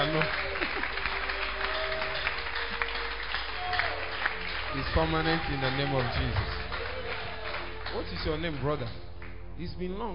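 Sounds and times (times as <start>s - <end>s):
crowd clapping: 0.0s - 9.5s
speech: 0.1s - 0.9s, 4.8s - 6.6s, 7.9s - 10.1s.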